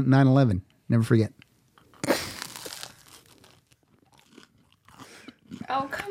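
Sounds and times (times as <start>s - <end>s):
speech: 0.0s - 1.4s
soft chewing of a tuna melt sandwich: 1.4s - 6.0s
crunchy bite into a toasted tuna melt sandwich: 1.8s - 5.7s.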